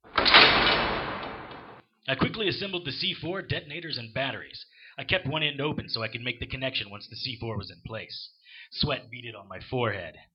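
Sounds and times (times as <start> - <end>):
storeroom door pulled shut and locked: 0.0 - 1.8
speech: 2.1 - 10.3.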